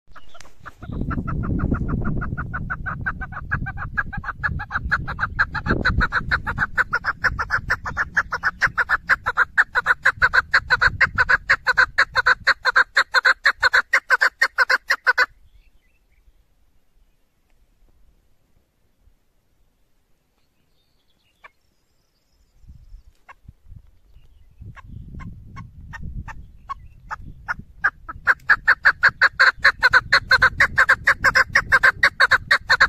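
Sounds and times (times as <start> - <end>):
female partridge calling: 0.1 - 15.3, 24.2 - 32.8.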